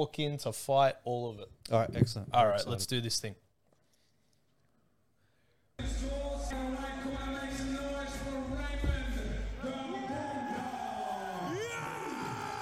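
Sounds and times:
speech: 0.0s - 3.4s
dense fight crowd roaring and cheering: 6.1s - 12.6s
man screaming and bellowing: 9.7s - 12.6s.

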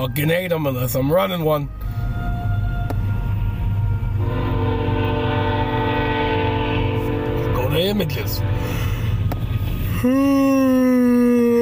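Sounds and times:
speech: 0.0s - 2.0s, 7.8s - 8.9s, 10.0s - 10.8s
passing train rumbling: 0.0s - 11.5s
train horn blaring: 1.7s - 9.8s.

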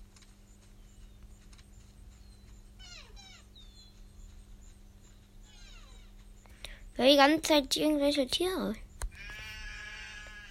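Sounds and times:
speech: 7.0s - 8.8s
sheep bleating: 9.2s - 10.4s.

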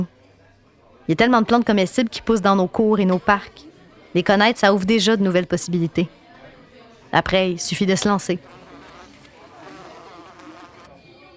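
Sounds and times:
speech: 1.1s - 6.2s, 7.1s - 8.6s
wasp buzzing as it flies into a drinking glass: 8.2s - 11.0s.

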